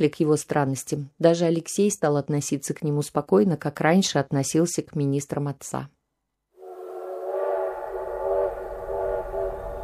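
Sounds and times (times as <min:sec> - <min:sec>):
speech: 0:00.0 - 0:06.0
low rumbling background: 0:06.6 - 0:09.8
steam locomotive whistle blowing: 0:06.6 - 0:09.8.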